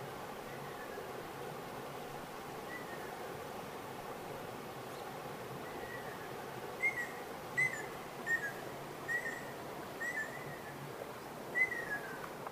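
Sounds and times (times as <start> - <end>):
constant hiss: 0.0 - 12.5
ruddy kingfisher whistled call series: 6.8 - 10.7, 11.6 - 12.2.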